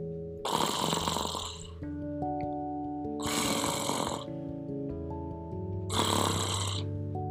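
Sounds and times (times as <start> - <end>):
soft music: 0.0 - 7.2
man snoring loudly in his sleep: 0.5 - 1.8, 3.2 - 4.4, 5.9 - 6.9.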